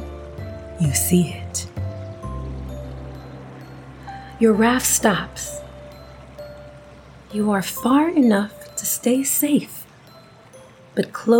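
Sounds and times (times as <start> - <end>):
waterfall roaring: 0.0 - 8.8
speech: 0.8 - 1.7, 4.4 - 5.6, 7.3 - 9.8, 11.0 - 11.3.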